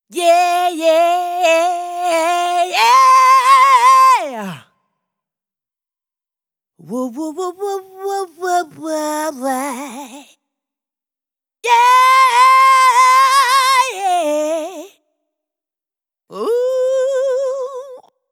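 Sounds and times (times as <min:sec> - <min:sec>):
vocals with EQ: 0:00.0 - 0:04.8, 0:06.8 - 0:10.4, 0:11.6 - 0:15.0, 0:16.3 - 0:18.1.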